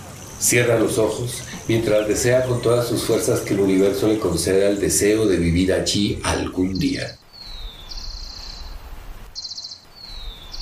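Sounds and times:
faint low outdoor rumble: 0.0 - 7.3
rufous-collared sparrow chirping: 0.0 - 8.8, 9.4 - 10.6
speech: 0.4 - 7.2.

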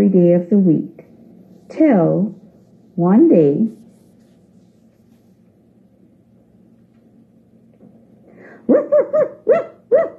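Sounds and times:
speech: 0.0 - 1.0, 1.7 - 2.4, 3.0 - 3.8, 8.7 - 10.1
big grumpy dog tied to a rope barking and growling: 8.7 - 10.1.

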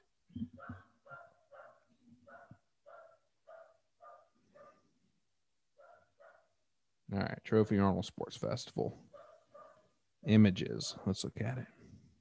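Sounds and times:
pet dog barking: 0.6 - 4.8, 5.8 - 6.5, 9.1 - 10.4
speech: 7.1 - 9.1, 10.2 - 11.8.

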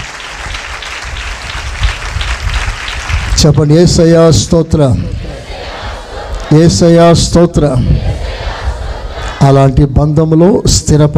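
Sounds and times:
church congregation clapping hands in praise during worship: 0.0 - 4.5, 5.6 - 6.9
speech: 3.4 - 5.2, 6.5 - 8.2, 9.4 - 11.1.

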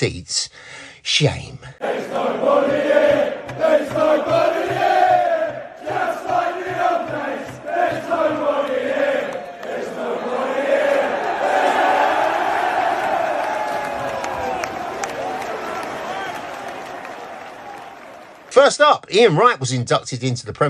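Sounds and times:
speech: 0.0 - 4.4, 18.6 - 20.6
big football crowd chanting a sung terrace taunt in unison: 1.8 - 18.4
rhythmic thumping beats: 2.0 - 9.2.

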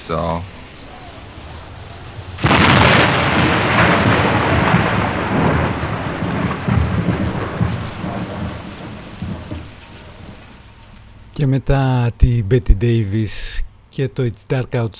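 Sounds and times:
steady heavy rain hissing: 0.0 - 13.6
speech: 0.1 - 0.6, 11.4 - 14.9
thunderclap rolling into a long deep rumble: 1.1 - 11.2.

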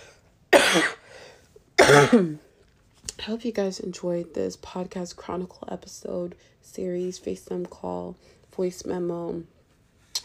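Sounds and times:
rough loud throat-clearing coughs: 0.5 - 1.1, 1.8 - 2.5
speech: 0.7 - 1.0, 2.0 - 2.5, 3.2 - 9.6.

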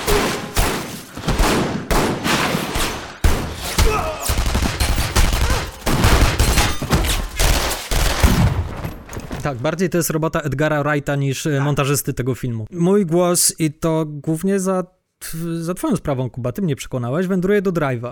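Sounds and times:
rapid gunfire from a film scene: 0.0 - 8.6
speech: 9.5 - 18.1.

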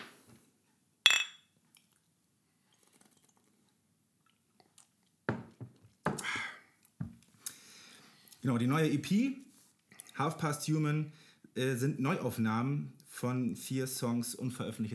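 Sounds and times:
glasses clinking in a toast: 1.1 - 1.5
speech: 8.4 - 9.4, 10.2 - 14.9.

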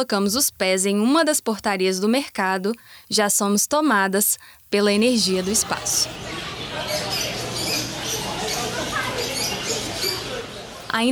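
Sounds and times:
speech: 0.0 - 7.1, 10.9 - 11.1
small high chirps and squeaks: 5.3 - 10.5
steady wash of overlapping voices indoors: 5.3 - 10.9.

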